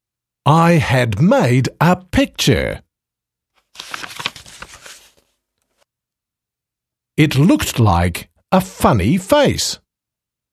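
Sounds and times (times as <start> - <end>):
speech: 0.5 - 2.8, 7.2 - 9.8
potato wedge pressed and rubbed onto paper: 3.6 - 5.9.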